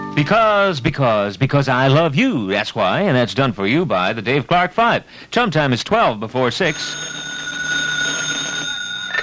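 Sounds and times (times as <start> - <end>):
speech: 0.2 - 7.3
telephone ringing: 6.7 - 9.2.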